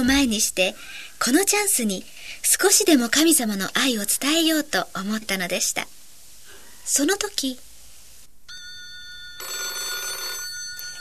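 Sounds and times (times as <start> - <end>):
speech: 0.0 - 6.0, 6.9 - 7.6
telephone ringing: 8.5 - 11.0.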